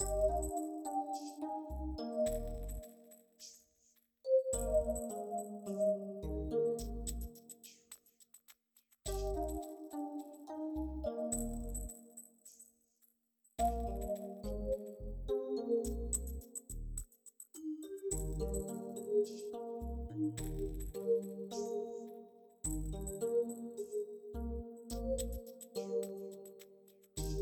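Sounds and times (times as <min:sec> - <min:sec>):
music in caves: 0:00.0 - 0:03.6, 0:04.3 - 0:08.1, 0:09.1 - 0:12.7, 0:13.6 - 0:27.3.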